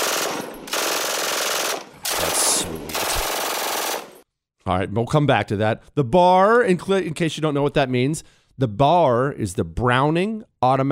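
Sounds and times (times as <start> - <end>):
MG-42 machine gun firing: 0.0 - 4.2
speech: 4.7 - 10.8.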